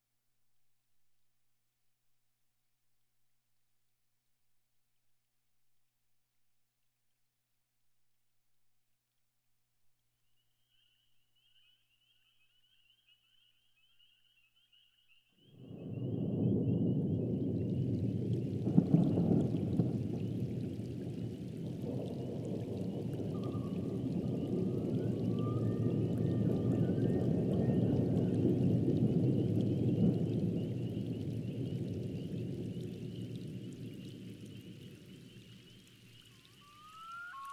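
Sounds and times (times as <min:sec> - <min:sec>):
thunderstorm: 0:15.6 - 0:35.6.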